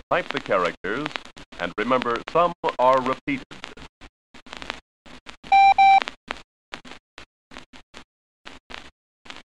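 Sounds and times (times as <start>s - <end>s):
speech: 0.1s - 3.8s
Morse code beeps in a code practice drill: 5.5s - 6.0s.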